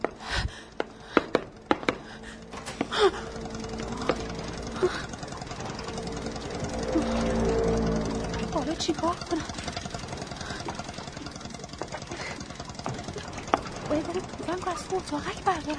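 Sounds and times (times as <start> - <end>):
boat motor engine running with low knocking chug: 0.0 - 15.7
sharp clanks: 0.0 - 15.7
speech: 3.0 - 3.3, 8.9 - 9.6, 14.2 - 15.7.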